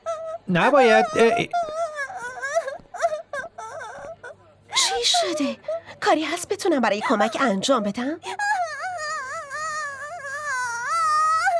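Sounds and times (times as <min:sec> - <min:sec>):
little girl crying: 0:00.0 - 0:05.9, 0:08.2 - 0:11.5
speech: 0:00.5 - 0:01.7, 0:05.4 - 0:08.4.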